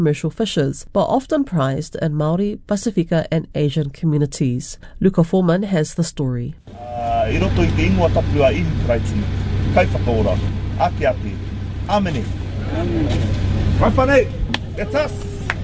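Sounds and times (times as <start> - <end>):
speech: 0.0 - 15.3
cars idling in a queue at a car park: 6.7 - 15.6.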